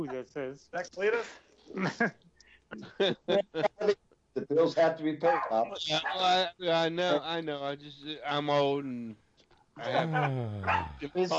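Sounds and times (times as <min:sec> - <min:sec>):
speech: 0:00.0 - 0:09.2, 0:09.8 - 0:11.3
laughter: 0:01.0 - 0:02.1, 0:02.8 - 0:09.1, 0:09.9 - 0:11.3
puppy barking: 0:05.2 - 0:06.3, 0:10.1 - 0:11.0.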